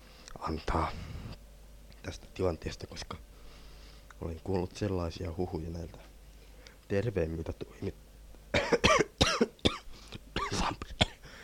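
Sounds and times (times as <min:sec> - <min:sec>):
speech: 0:00.4 - 0:01.2, 0:02.0 - 0:03.3, 0:04.2 - 0:06.1, 0:06.9 - 0:08.0
person coughing harshly: 0:08.5 - 0:11.2
throat clearing: 0:08.6 - 0:11.2.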